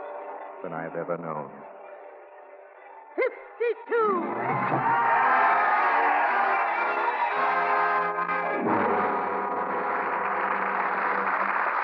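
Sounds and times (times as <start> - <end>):
speech: 0.6 - 1.8, 3.6 - 5.1
whoops: 3.9 - 7.8
large crowd roaring: 4.1 - 11.7.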